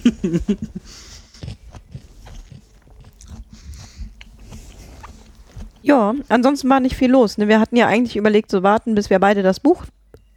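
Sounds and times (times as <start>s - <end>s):
laughter: 0.0s - 1.2s
speech: 0.2s - 1.0s, 5.9s - 10.0s
crunchy food being chewed: 0.9s - 6.3s.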